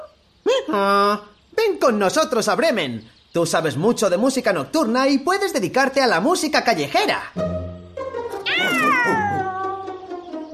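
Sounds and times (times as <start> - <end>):
speech: 0.7 - 1.3, 1.8 - 7.6
cat meowing, drawn out and sliding downward in pitch: 8.4 - 10.0.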